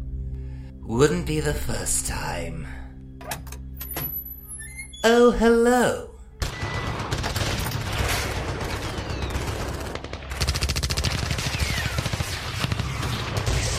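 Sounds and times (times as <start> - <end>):
speech: 0.9 - 2.8, 5.0 - 6.1
rapid bursts of gunfire: 6.4 - 13.7.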